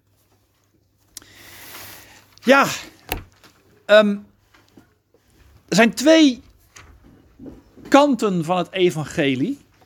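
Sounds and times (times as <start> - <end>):
speech: 2.5 - 3.0, 3.9 - 4.3, 5.7 - 6.4, 7.4 - 9.6
door latch click: 3.1 - 3.3
door swinging shut with a thud: 3.1 - 3.4.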